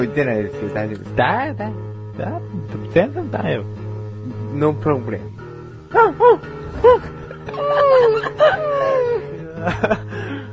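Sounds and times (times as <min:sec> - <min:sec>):
speech: 0:00.0 - 0:08.7, 0:09.6 - 0:10.3
person imitating a whimpering dog: 0:05.9 - 0:08.2
breathy laugh-like sound: 0:06.9 - 0:10.5.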